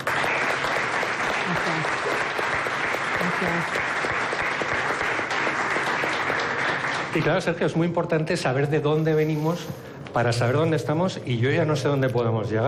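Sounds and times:
audience applauding: 0:00.0 - 0:09.6
speech: 0:03.4 - 0:04.0, 0:07.1 - 0:12.6.

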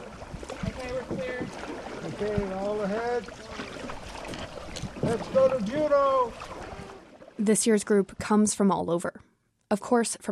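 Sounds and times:
canoe paddles splashing and swishing through water: 0:00.0 - 0:07.5
wind outdoors: 0:00.0 - 0:10.3
speech: 0:02.2 - 0:03.5, 0:05.1 - 0:06.6, 0:07.4 - 0:10.3.

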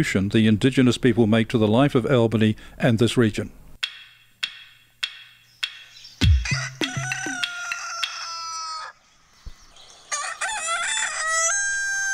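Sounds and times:
speech: 0:00.0 - 0:03.6
rooster crowing: 0:06.2 - 0:09.0, 0:10.1 - 0:12.1.

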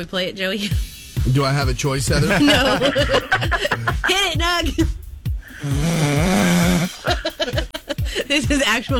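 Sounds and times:
speech: 0:00.0 - 0:05.0, 0:05.6 - 0:06.4, 0:07.0 - 0:08.9
laughter: 0:02.0 - 0:04.9, 0:06.4 - 0:08.4
man snoring with rasping buzzy breath and low snorts: 0:05.4 - 0:07.4.

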